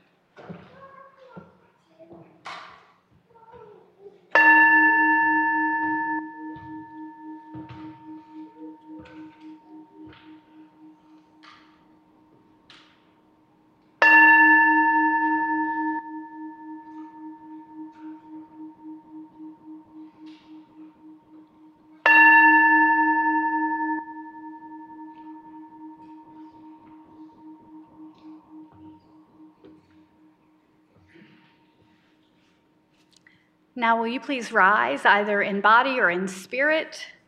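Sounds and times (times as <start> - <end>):
bell ringing to call to worship: 4.4 - 13.3, 14.0 - 31.6
speech: 33.8 - 37.2.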